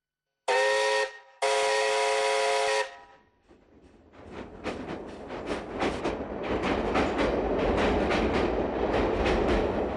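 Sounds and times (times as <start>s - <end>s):
train whistle blasts: 0.5s - 3.2s
speeding train rumble: 3.4s - 9.9s.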